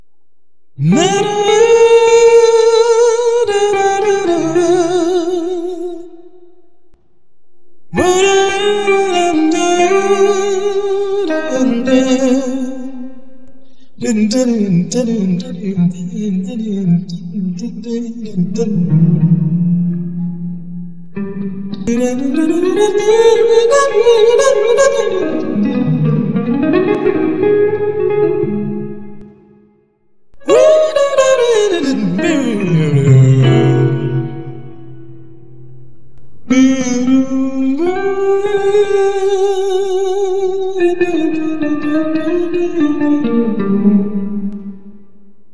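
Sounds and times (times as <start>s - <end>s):
intro guitar: 0.8s - 6.6s, 7.9s - 45.2s
voice doubling the guitar in the intro: 31.5s - 36.0s.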